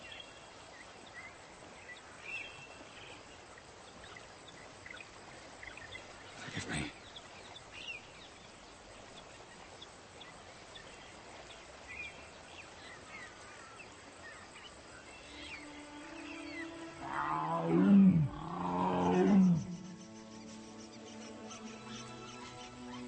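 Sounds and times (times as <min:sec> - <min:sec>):
insect and cricket chirring: 0:00.0 - 0:23.0
tiger letting out a deep rumbling roar: 0:17.0 - 0:19.9.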